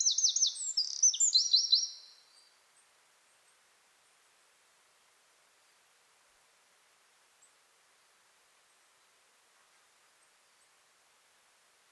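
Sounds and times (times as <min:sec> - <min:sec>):
Eurasian wren song, Troglodytes troglodytes: 0:00.0 - 0:02.6.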